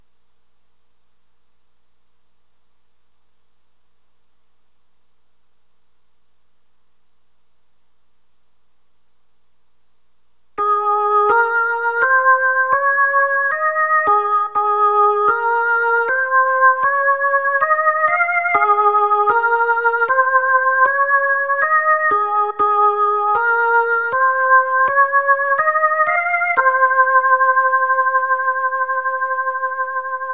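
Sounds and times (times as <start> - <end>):
organ playing: 10.6 - 30.3.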